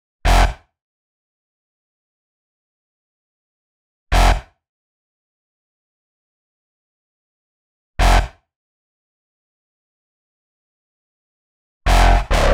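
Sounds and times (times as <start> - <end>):
complex electro synths with bass in G: 11.9 - 12.5.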